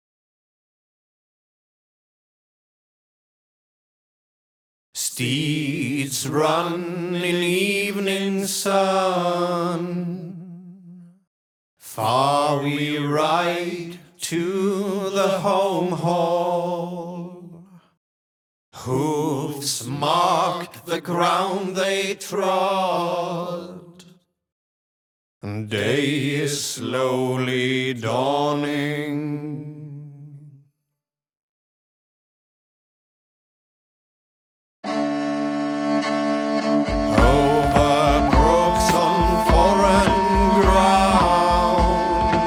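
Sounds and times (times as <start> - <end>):
vocal chorus: 5.0 - 11.2, 11.8 - 18.0, 18.8 - 24.2, 25.4 - 30.6, 36.8 - 42.4
flute: 34.8 - 42.4
drum: 37.0 - 42.4.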